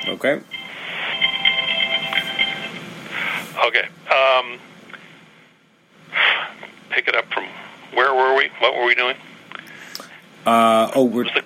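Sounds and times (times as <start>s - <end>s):
speech: 0.0s - 0.6s, 3.6s - 4.7s, 6.9s - 9.3s, 10.4s - 11.4s
phone electronic ringtone with repeating high beeps: 0.0s - 2.8s.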